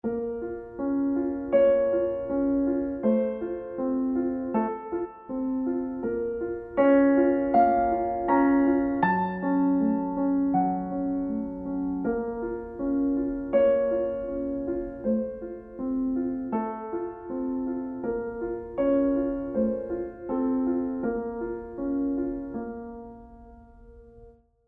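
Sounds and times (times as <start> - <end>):
piano ending: 0.0 - 24.4.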